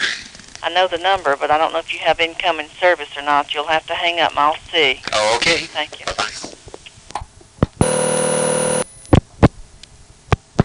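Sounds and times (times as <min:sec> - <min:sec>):
speech: 0:00.6 - 0:06.4
buzzy payphone dial tone: 0:07.8 - 0:08.8.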